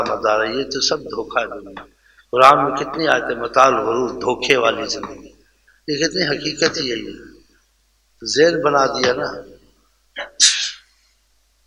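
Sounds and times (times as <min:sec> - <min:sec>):
speech: 0:00.0 - 0:05.3, 0:05.9 - 0:07.3, 0:08.2 - 0:09.5, 0:10.2 - 0:10.6
sneeze: 0:10.2 - 0:10.9.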